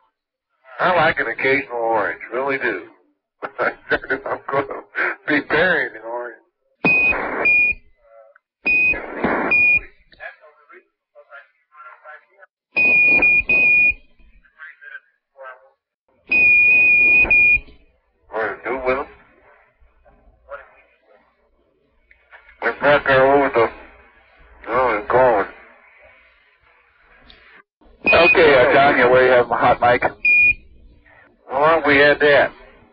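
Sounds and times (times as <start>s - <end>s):
crackly radio transmissions of voices: 0.6s - 6.5s, 7.1s - 32.9s
speech: 0.8s - 6.1s, 22.8s - 23.6s, 29.4s - 30.1s.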